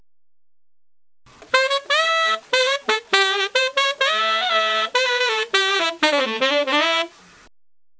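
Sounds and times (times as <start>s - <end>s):
jazz saxophone riff: 1.3s - 7.2s.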